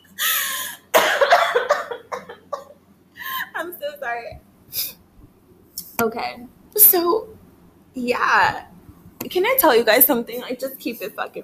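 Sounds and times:
person coughing fit: 0:00.4 - 0:02.7
speech: 0:06.0 - 0:07.4, 0:08.0 - 0:08.7, 0:09.3 - 0:11.4.

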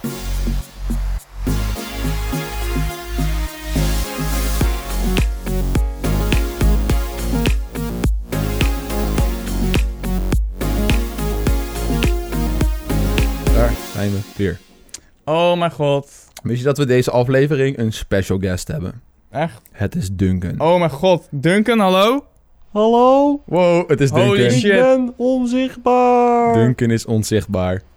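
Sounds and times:
upbeat instrumental podcast intro jingle with punchy beat and bright synths: 0:00.0 - 0:14.9
speech: 0:14.4 - 0:14.7, 0:15.3 - 0:27.9.

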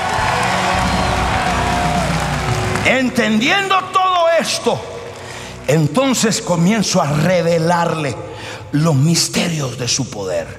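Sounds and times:
large audience shouting, cheering and whooping: 0:00.0 - 0:03.4
large audience clapping: 0:00.0 - 0:05.5
speech: 0:02.8 - 0:04.9, 0:05.7 - 0:10.5.

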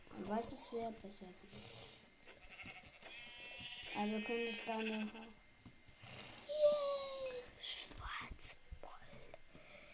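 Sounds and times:
low hum: 0:00.0 - 0:09.9
speech: 0:00.2 - 0:02.0, 0:04.0 - 0:05.4
sheep bleating: 0:02.3 - 0:05.3.

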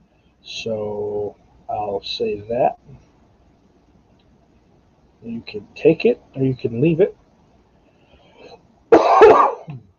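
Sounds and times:
speech: 0:00.4 - 0:03.1, 0:05.2 - 0:07.2
loud rough cough: 0:08.9 - 0:09.8.

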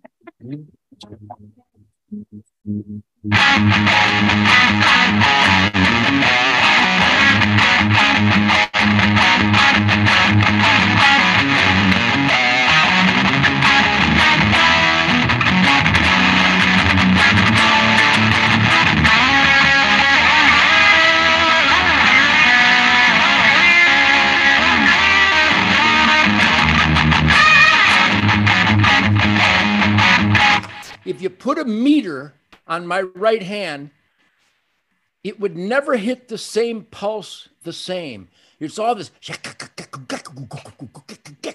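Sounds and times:
sparse muted guitar plucks: 0:00.0 - 0:30.9
speech: 0:00.4 - 0:05.7, 0:31.6 - 0:34.0, 0:35.2 - 0:40.8.

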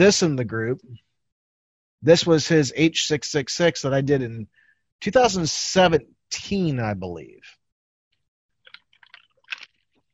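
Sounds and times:
speech: 0:00.0 - 0:01.1, 0:02.0 - 0:07.6
person sipping a drink: 0:08.7 - 0:10.1.

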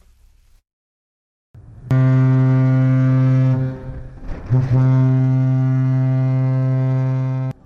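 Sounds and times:
deep ship's horn blasting on departure: 0:01.6 - 0:07.6.

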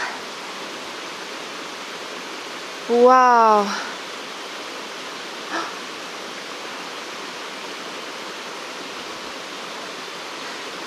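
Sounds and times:
waterfall rushing: 0:00.0 - 0:10.8
person exclaiming in amazement: 0:02.9 - 0:03.8
speech: 0:02.9 - 0:03.9.

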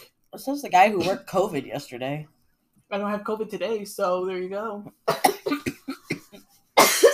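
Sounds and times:
speech: 0:00.3 - 0:05.6
person coughing: 0:05.1 - 0:07.1.

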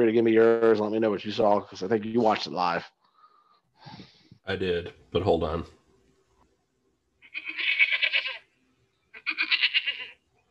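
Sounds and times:
speech: 0:00.0 - 0:03.0, 0:03.8 - 0:05.8
goat bleating: 0:07.2 - 0:08.5, 0:09.2 - 0:10.2.

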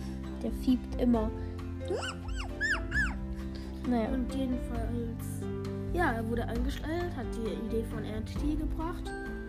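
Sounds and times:
speech: 0:00.4 - 0:02.3, 0:03.9 - 0:09.3
dog whimpering with thin high whines: 0:01.8 - 0:03.3.

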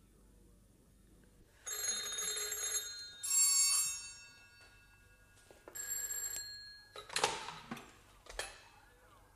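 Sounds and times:
telephone bells ringing with shrill metallic jangling: 0:01.6 - 0:07.3.

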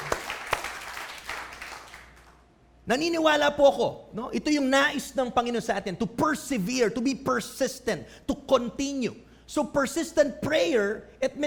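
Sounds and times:
congregation applauding during a church service: 0:00.0 - 0:02.4
speech: 0:02.9 - 0:11.4.

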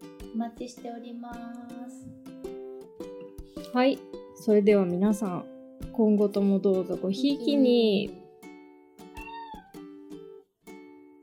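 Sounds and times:
speech: 0:00.4 - 0:02.3, 0:03.7 - 0:08.2
cat meowing: 0:09.1 - 0:09.9.

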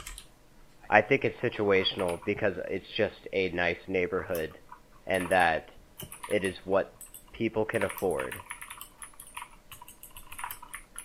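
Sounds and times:
typing on a computer keyboard: 0:00.0 - 0:00.3, 0:05.1 - 0:11.0
speech: 0:00.9 - 0:08.5.

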